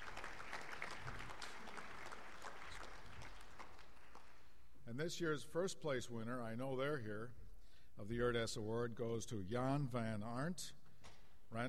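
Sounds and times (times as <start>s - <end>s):
audience at an awards presentation applauding: 0.0s - 4.4s
speech: 4.9s - 7.4s, 8.0s - 10.8s.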